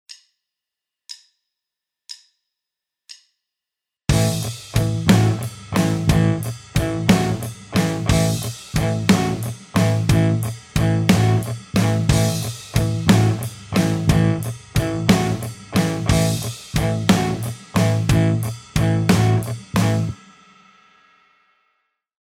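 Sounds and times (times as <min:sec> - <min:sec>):
rock backing track: 0:04.1 - 0:20.2.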